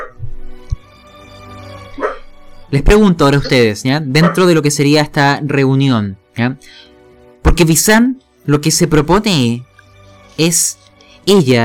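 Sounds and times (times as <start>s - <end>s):
dog barking: 0.0s - 0.2s, 2.0s - 2.3s, 4.2s - 4.5s
speech: 2.7s - 9.7s, 10.4s - 11.6s.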